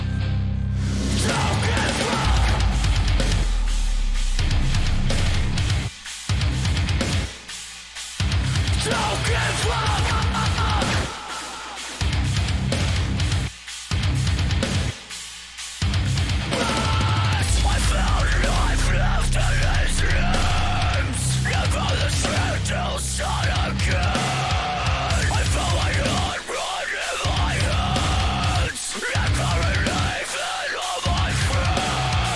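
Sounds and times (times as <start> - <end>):
heavy metal breakdown with guitars and drums: 0.0 - 32.3
raw screamed vocals: 1.0 - 3.8, 8.6 - 12.9, 16.4 - 32.3.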